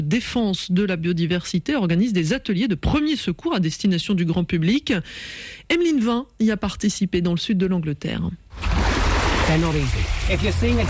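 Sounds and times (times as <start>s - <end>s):
speech: 0.0s - 8.7s, 9.5s - 10.8s
sea waves washing: 8.5s - 10.8s
swimmers splashing in sea water: 8.5s - 10.8s.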